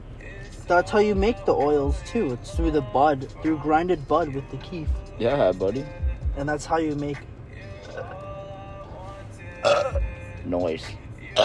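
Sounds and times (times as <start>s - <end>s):
speech: 0.7s - 7.3s, 10.4s - 11.4s
drunk person burping: 9.6s - 10.0s.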